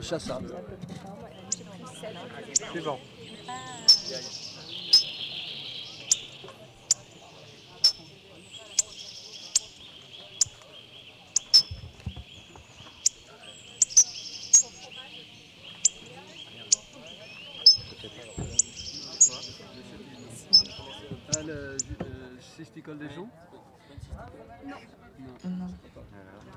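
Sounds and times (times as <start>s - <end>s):
speech: 0.0s - 1.4s, 2.0s - 4.9s, 22.8s - 26.5s
people talking quietly: 0.0s - 26.5s
hawfinch sharp high tzik calls: 1.3s - 22.0s.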